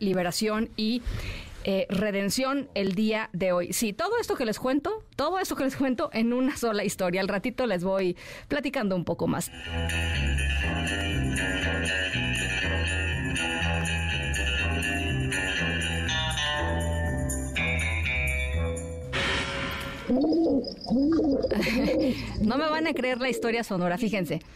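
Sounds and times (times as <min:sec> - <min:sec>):
speech: 0:00.0 - 0:12.5, 0:20.1 - 0:24.5
tonal music: 0:09.5 - 0:21.4
pigeon cooing: 0:20.1 - 0:22.2
laughter: 0:21.4 - 0:22.4.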